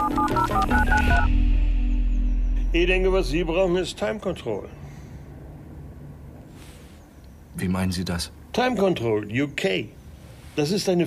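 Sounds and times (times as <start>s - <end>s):
touch-tone beeps of a telephone number being dialed: 0.0s - 1.4s
steady low hum: 0.9s - 6.4s
speech: 2.7s - 4.8s, 7.6s - 10.0s, 10.6s - 11.0s.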